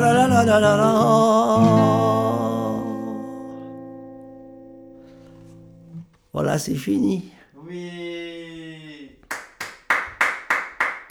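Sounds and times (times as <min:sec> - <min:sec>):
speech: 0:00.0 - 0:02.4, 0:06.4 - 0:08.4
one person clapping alone in lockdown-style applause: 0:09.2 - 0:11.0.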